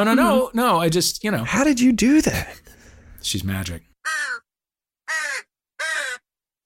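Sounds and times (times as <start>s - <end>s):
speech: 0.0s - 4.4s
crow cawing: 4.0s - 6.6s.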